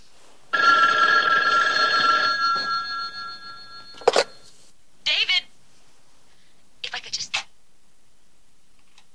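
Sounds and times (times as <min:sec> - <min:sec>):
telephone bell ringing: 0:00.5 - 0:04.5.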